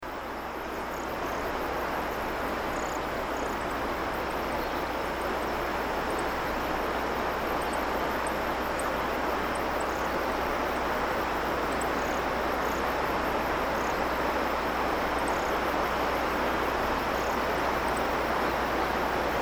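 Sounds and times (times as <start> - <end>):
slow river flowing: 0.0 - 19.4.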